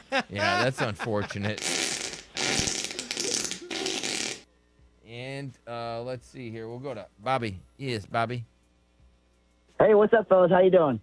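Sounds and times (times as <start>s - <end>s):
laughter: 0.0s - 1.7s
speech: 0.1s - 1.8s, 5.4s - 8.6s, 9.8s - 11.0s
loud raspy fart sound effect: 1.6s - 4.5s.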